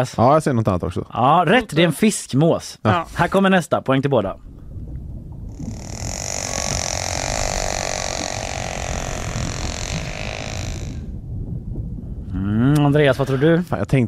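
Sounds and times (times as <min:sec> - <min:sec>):
speech: 0:00.0 - 0:04.5, 0:12.8 - 0:14.0
constant low underwater rumble: 0:04.3 - 0:12.3
killer whale long buzzy harmonic call: 0:05.5 - 0:11.2.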